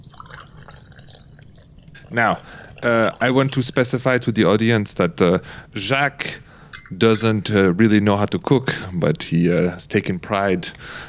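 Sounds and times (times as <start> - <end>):
hot water from a freshly boiled kettle poured into a teapot holding tea: 0.0 - 4.1
speech: 2.1 - 11.0.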